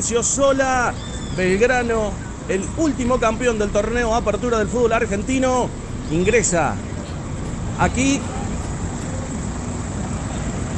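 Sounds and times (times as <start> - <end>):
speech: 0.0 - 6.9, 7.8 - 8.4
bus engine running as a football team's coach arrives at a stadium: 0.0 - 10.7.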